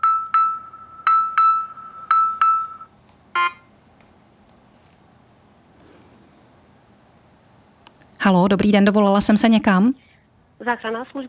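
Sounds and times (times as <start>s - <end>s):
phone call ringing tone of a test emergency call through an emergency app: 0.0s - 3.6s
speech: 8.2s - 10.0s, 10.6s - 11.2s.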